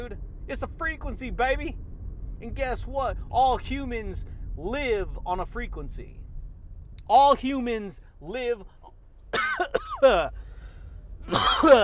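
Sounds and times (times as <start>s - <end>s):
speech: 0.0s - 6.2s, 7.1s - 10.4s, 11.2s - 11.8s
person coughing harshly: 9.3s - 10.4s, 11.3s - 11.8s.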